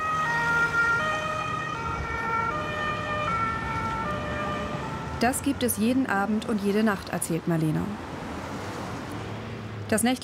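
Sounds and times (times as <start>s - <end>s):
emergency vehicle siren wailing: 0.0s - 6.5s
low rumble of road traffic: 0.0s - 10.2s
speech: 5.2s - 8.1s, 9.9s - 10.2s.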